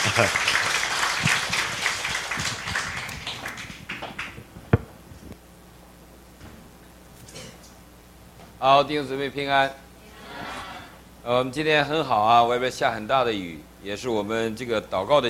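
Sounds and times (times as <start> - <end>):
speech: 0.0 - 0.6, 8.6 - 9.8, 11.2 - 15.2
audience applauding to welcome a pastor: 0.0 - 4.6.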